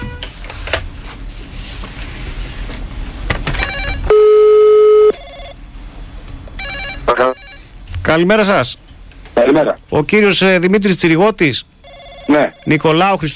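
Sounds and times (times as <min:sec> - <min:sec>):
steady ringback tone of an outgoing phone call: 0:03.6 - 0:05.6, 0:06.6 - 0:07.7, 0:11.8 - 0:12.8
speech: 0:08.1 - 0:13.3.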